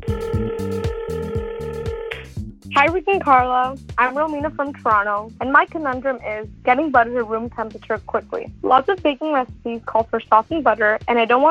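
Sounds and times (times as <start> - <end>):
telephone ringing: 0.0 - 2.1
sustained electronic tone: 0.0 - 2.3
speech: 2.8 - 11.4.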